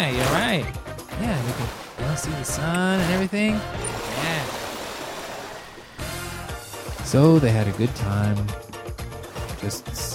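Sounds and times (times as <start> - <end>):
speech: 0.0 - 4.6, 7.1 - 8.7, 9.6 - 10.1
river water rushing: 1.3 - 6.0.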